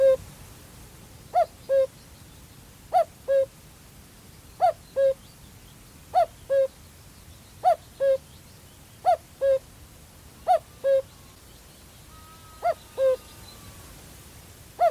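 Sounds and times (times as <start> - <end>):
male Common Cuckoo giving falling two-note cuckoo on a lowland heath in Staffordshire: 0.0 - 0.2, 1.4 - 1.9, 2.9 - 3.5, 4.6 - 5.2, 6.2 - 6.7, 9.0 - 9.6, 10.4 - 14.0.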